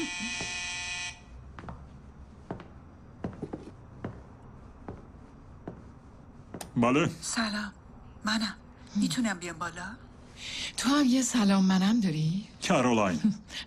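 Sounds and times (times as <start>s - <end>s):
door buzzer electric buzz: 0.0s - 1.3s
speech: 6.8s - 13.6s.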